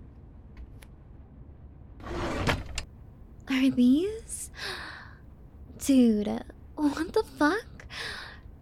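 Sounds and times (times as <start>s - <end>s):
top drawer sliding open: 2.0s - 2.9s
speech: 3.6s - 4.7s, 5.8s - 7.7s.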